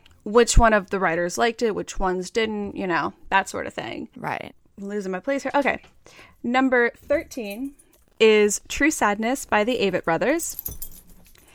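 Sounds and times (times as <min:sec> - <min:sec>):
speech: 0:00.2 - 0:10.9
dog collar tags jingling: 0:05.6 - 0:11.5.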